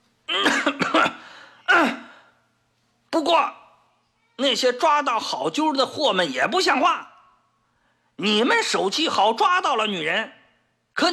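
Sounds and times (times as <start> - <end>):
man clearing throat: 0.3 - 2.2
man coughing in rough bursts: 0.3 - 2.3
speech: 3.2 - 3.6, 4.4 - 7.1, 8.2 - 10.4, 11.0 - 11.1.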